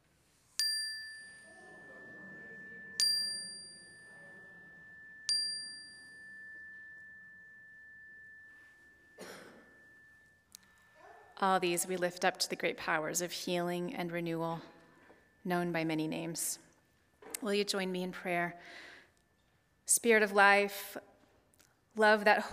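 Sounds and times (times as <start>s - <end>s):
bright chime struck during prayer: 0.6s - 12.1s
person coughing: 9.2s - 9.8s
speech: 11.4s - 14.7s, 15.4s - 16.7s, 17.4s - 18.9s, 19.9s - 21.1s, 22.0s - 22.5s.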